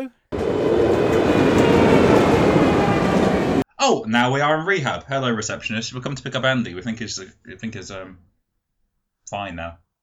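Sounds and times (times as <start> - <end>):
speech: 0.0 - 0.5, 3.8 - 8.3, 9.3 - 9.8
train rolling along rails with clickety-clack: 0.3 - 3.6.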